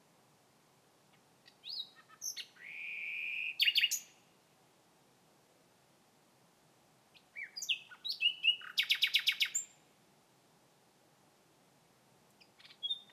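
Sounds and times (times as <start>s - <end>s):
common nightingale song: 1.1s - 4.3s, 7.1s - 9.8s, 12.4s - 13.1s.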